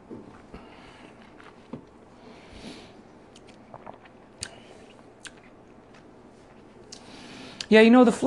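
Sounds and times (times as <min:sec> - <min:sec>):
person sipping whiskey with water: 0:00.2 - 0:07.7
wet mouth clicks and smacks: 0:03.3 - 0:07.7
speech: 0:07.7 - 0:08.2.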